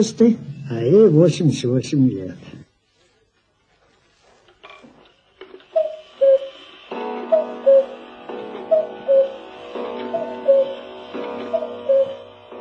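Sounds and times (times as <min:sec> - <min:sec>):
speech: 0:00.0 - 0:02.6
weight-driven cuckoo wall clock two-note call: 0:05.6 - 0:12.4.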